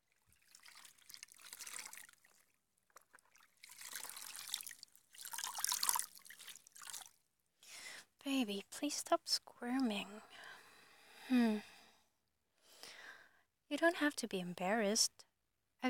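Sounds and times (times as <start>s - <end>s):
water splashing and trickling while a mother washes a feverish young child: 0.0s - 7.3s
speech: 8.3s - 10.5s, 11.3s - 11.7s, 13.7s - 15.8s.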